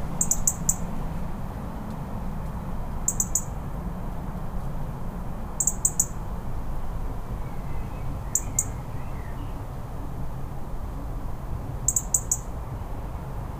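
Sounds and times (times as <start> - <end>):
steady low rumble: 0.0 - 13.5
European robin giving sharp high tick calls: 0.2 - 0.9, 1.9 - 3.6, 5.6 - 6.2, 8.2 - 9.6, 11.9 - 12.5.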